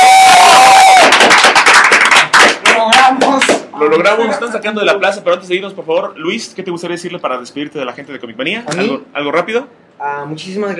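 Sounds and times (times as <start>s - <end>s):
crowd cheering: 0.0s - 3.1s
audience clapping in a plaza at a comic convention: 0.0s - 3.7s
speech: 4.0s - 10.7s.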